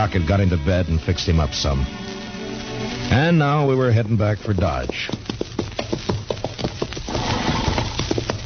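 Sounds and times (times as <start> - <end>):
speech: 0.0 - 2.2, 3.1 - 5.2
horse hooves stomping: 3.1 - 8.4.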